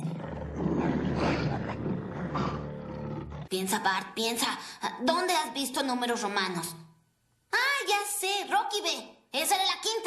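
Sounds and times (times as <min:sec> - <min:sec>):
fierce tigers roaring: 0:00.0 - 0:03.5
speech: 0:03.5 - 0:06.8, 0:07.5 - 0:10.0.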